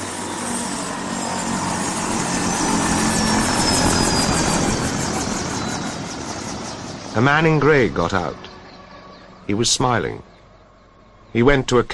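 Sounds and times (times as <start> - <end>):
helicopter rotor chopping while landing: 0.0 - 10.2
high helicopter turbine whine: 0.0 - 11.9
speech: 7.2 - 8.5, 9.5 - 10.3, 11.3 - 11.9.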